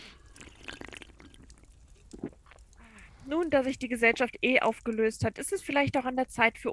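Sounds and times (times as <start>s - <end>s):
drinks poured in short splashing bursts: 0.0s - 4.9s
quiet sipping of drinks after a toast: 0.0s - 5.2s
low hiss: 0.0s - 6.7s
speech: 3.3s - 6.7s.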